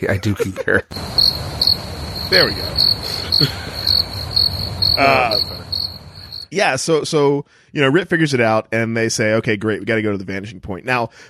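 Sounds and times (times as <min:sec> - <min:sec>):
laughter: 0:00.0 - 0:01.0, 0:02.4 - 0:04.1, 0:05.0 - 0:05.7
speech: 0:00.0 - 0:03.7, 0:05.0 - 0:05.8, 0:06.5 - 0:11.2
crickets chirping at night: 0:00.9 - 0:06.5.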